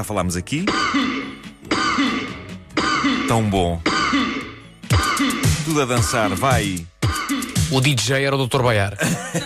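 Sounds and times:
speech: 0:00.0 - 0:02.2, 0:03.3 - 0:04.4, 0:05.2 - 0:09.4
dense bright disco music track: 0:00.0 - 0:08.1
human coughs used as a rhythmic disco beat: 0:00.6 - 0:05.8, 0:07.0 - 0:07.7, 0:09.0 - 0:09.4
laughter: 0:09.0 - 0:09.4.

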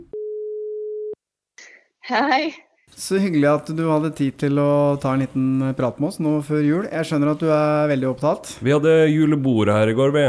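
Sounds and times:
telephone ringing tone while placing a call: 0:00.1 - 0:01.2
speech: 0:02.0 - 0:10.2.

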